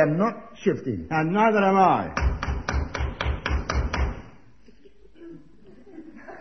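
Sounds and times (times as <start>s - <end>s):
speech: 0.0s - 2.3s
faint noise: 0.0s - 6.3s
knocking on a door: 2.2s - 4.3s
laughter: 4.6s - 6.3s.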